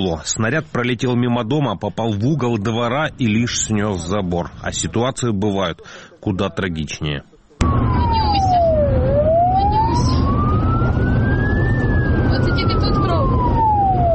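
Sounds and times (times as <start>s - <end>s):
speech: 0.0s - 7.8s
loud ambulance siren wailing: 7.6s - 14.1s
steady rumble of engine and road noise: 7.6s - 14.1s.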